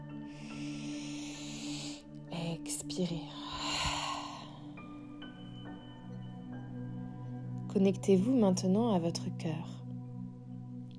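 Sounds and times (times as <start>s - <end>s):
quiet steady low drone: 0.0s - 10.9s
slow deep inhale during a guided meditation: 0.2s - 2.1s, 3.3s - 5.2s
speech: 2.9s - 3.6s, 7.7s - 9.8s.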